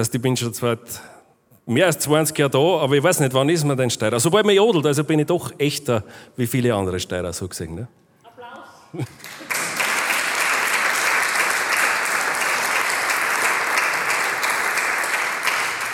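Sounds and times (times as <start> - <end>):
speech: 0.0 - 8.0, 8.9 - 9.4
crowd applauding loudly: 9.1 - 15.9.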